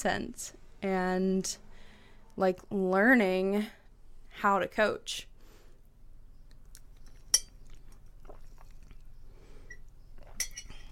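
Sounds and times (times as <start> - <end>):
speech: 0.0 - 1.6, 2.4 - 3.8, 4.4 - 5.3
low hum: 0.0 - 10.9
faint sipping: 6.8 - 10.9
coffee mug clinking: 10.3 - 10.9.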